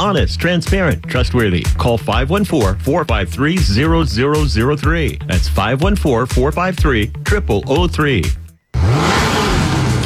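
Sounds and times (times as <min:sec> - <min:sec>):
speech: 0:00.0 - 0:09.0
car engine revving: 0:08.7 - 0:10.0.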